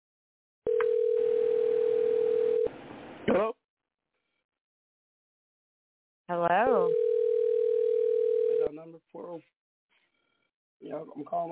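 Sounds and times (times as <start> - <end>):
telephone ringing tone heard over a line: 0.7 - 2.7, 6.8 - 8.7
speech: 10.9 - 11.5.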